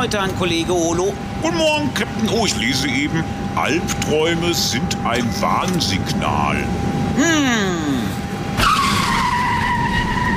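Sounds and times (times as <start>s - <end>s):
speech: 0.0s - 8.0s
car tires screeching in a skid: 8.6s - 10.3s.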